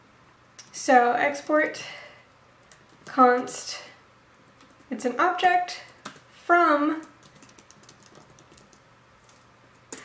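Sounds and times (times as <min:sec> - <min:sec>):
speech: 0:00.8 - 0:02.0, 0:03.2 - 0:03.9, 0:04.9 - 0:05.9, 0:06.5 - 0:07.1
computer keyboard typing during a programming demo: 0:02.6 - 0:03.2, 0:04.3 - 0:05.0, 0:05.8 - 0:06.3, 0:07.0 - 0:10.0.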